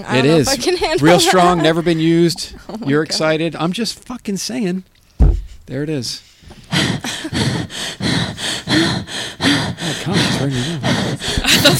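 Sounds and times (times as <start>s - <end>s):
speech: 0.0s - 5.0s, 5.7s - 8.0s, 10.1s - 11.7s
loud heavy raspy panting breathing: 5.2s - 11.7s.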